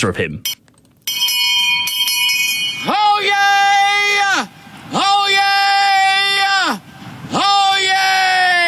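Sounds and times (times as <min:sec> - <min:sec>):
speech: 0:00.0 - 0:00.6
handbell clanging: 0:01.1 - 0:02.9
town crier bellowing long drawn-out cries: 0:02.8 - 0:08.6.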